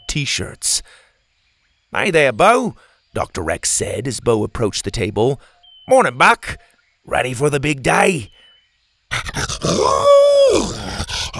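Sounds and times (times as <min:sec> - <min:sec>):
speech: 0:00.1 - 0:01.0, 0:01.9 - 0:08.4, 0:09.1 - 0:11.3
dog howling excitedly: 0:09.2 - 0:11.3.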